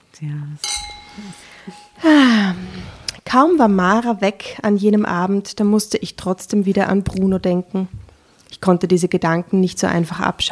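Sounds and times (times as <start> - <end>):
speech: 0.2 - 8.0, 8.6 - 10.4
glasses clinking in a toast: 0.6 - 2.5.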